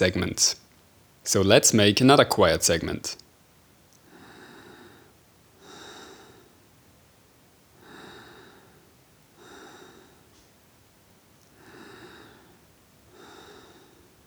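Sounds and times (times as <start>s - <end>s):
speech: 0.0s - 0.6s, 1.2s - 3.2s
low noise: 0.0s - 14.2s
heavy breathing: 4.1s - 6.6s, 7.8s - 10.3s, 11.5s - 14.2s.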